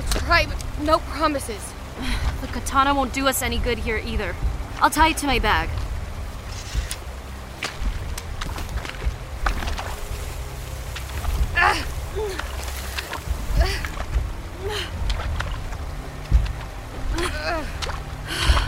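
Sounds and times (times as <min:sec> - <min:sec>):
someone wading slowly through shallow muddy water: 0:00.0 - 0:18.6
speech: 0:00.3 - 0:05.8.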